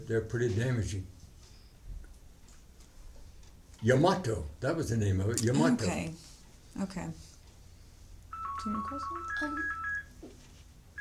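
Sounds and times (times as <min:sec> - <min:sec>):
speech: 0:00.1 - 0:01.2, 0:03.8 - 0:07.3, 0:08.6 - 0:09.8
electronic phone ringing with a two-tone burst: 0:08.3 - 0:10.2.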